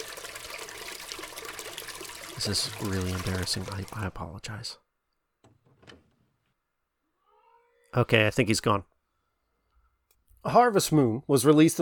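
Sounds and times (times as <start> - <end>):
toilet flushing: 0.0 - 4.2
speech: 2.4 - 4.8, 7.9 - 8.9, 10.4 - 11.8.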